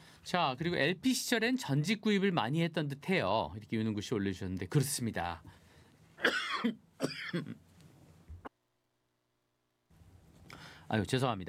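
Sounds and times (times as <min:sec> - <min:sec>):
speech: 0:00.3 - 0:05.6, 0:06.2 - 0:07.6, 0:10.9 - 0:11.4
person coughing after drinking cold water: 0:06.2 - 0:07.6.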